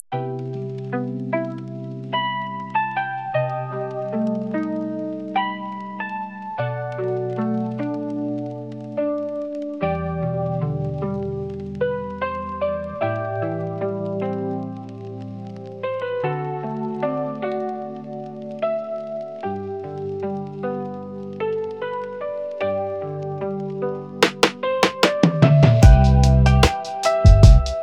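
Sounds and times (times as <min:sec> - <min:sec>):
lofi music: 0:00.0 - 0:27.8.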